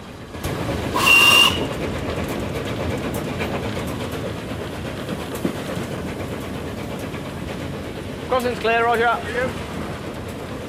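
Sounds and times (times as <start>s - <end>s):
A3 steam locomotive hauling carriages on an elevated embankment, rumble and chuffing: 0.0s - 10.6s
A3 steam locomotive whistle blast: 1.0s - 1.7s
speech: 8.3s - 9.6s.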